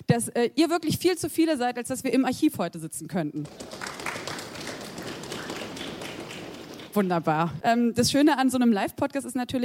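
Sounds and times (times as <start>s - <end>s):
speech: 0.1s - 3.8s, 7.0s - 9.6s
audience stamping feet on a floor: 3.4s - 7.3s.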